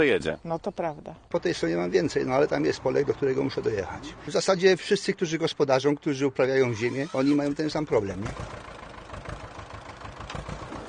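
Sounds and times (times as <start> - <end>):
speech: 0.0 - 8.7
worn aging farm tractor engine chugging: 6.7 - 10.8.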